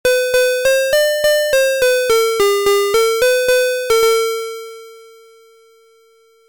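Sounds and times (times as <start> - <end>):
piano: 0.1 - 5.1.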